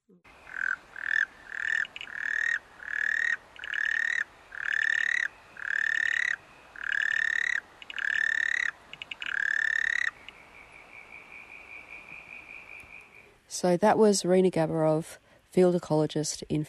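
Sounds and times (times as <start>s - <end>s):
frog croaking: 0.3s - 13.4s
speech: 13.6s - 16.6s.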